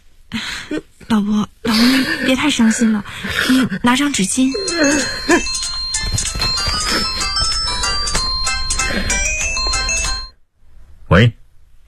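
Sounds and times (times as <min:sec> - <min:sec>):
speech: 0:00.3 - 0:05.6, 0:11.2 - 0:11.4
phone ringtone bright electronic melody: 0:04.2 - 0:10.4.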